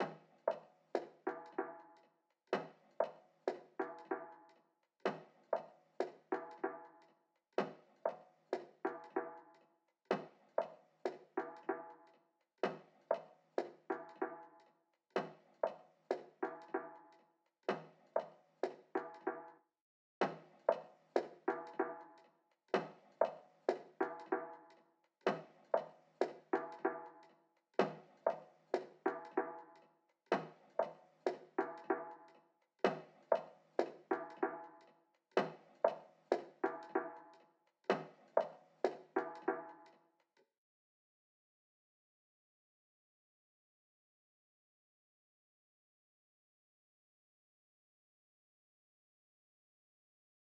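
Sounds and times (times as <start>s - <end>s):
95 BPM D sharp major hip hop percussion loop: 0.0s - 2.0s, 2.6s - 14.6s, 15.2s - 19.6s, 20.2s - 22.2s, 22.8s - 39.9s.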